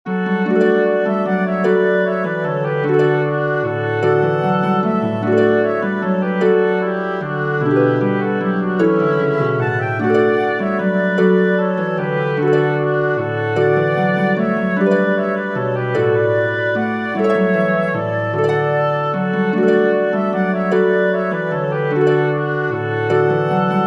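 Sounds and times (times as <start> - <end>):
flute: 0.1 - 23.8
harp: 0.1 - 23.8
oboe: 0.1 - 23.8.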